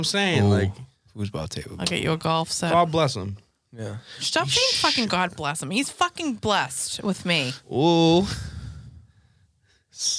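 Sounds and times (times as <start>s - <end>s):
speech: 0.0s - 8.5s, 10.0s - 10.1s
heavy breathing: 8.2s - 10.0s.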